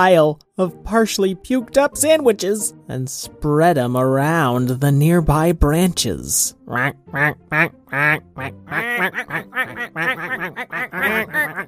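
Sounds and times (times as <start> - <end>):
speech: 0.0 - 11.6
flock of ducks quacking: 6.7 - 11.6.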